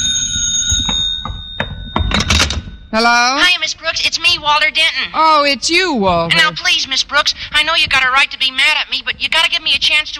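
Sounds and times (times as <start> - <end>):
telephone ringing: 0.0 - 3.9
speech: 2.9 - 10.1.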